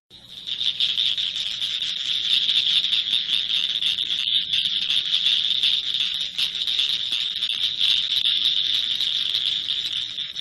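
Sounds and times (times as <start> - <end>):
Blanchard's cricket frog calling in a rapid clicking trill: 0.2 - 10.4.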